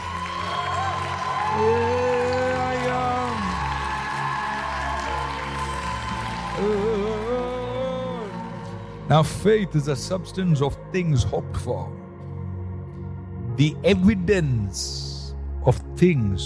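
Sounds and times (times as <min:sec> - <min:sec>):
large audience clapping: 0:00.0 - 0:09.4
voices calling out and cheering: 0:00.0 - 0:09.8
speech: 0:09.1 - 0:12.1, 0:13.6 - 0:16.4.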